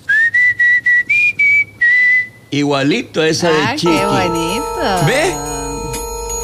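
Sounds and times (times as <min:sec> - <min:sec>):
person whistling to call a female animal: 0:00.0 - 0:02.4
speech: 0:02.5 - 0:05.5.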